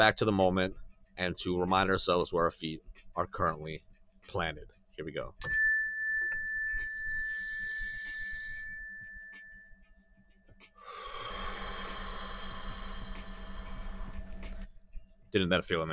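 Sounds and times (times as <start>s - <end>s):
speech: 0.0s - 5.6s, 15.3s - 15.9s
mindfulness bell chiming: 5.4s - 10.4s
loud drawn-out breath: 10.8s - 14.6s.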